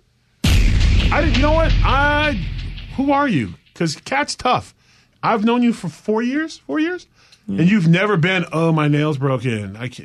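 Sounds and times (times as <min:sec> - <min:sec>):
staged explosion with sustained roaring rumble: 0:00.4 - 0:03.9
speech: 0:01.1 - 0:10.0.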